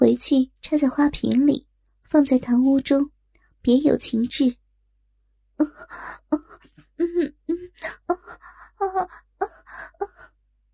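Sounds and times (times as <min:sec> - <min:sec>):
speech: 0:00.1 - 0:04.6, 0:05.6 - 0:10.3
breathy panting and moaning: 0:05.6 - 0:10.3.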